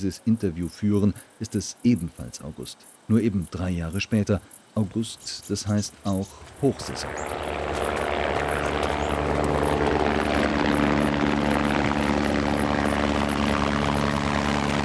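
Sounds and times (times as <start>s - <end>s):
speech: 0.0s - 8.0s
helicopter engine roaring while delivering supplies to a mountain hut: 6.6s - 14.8s.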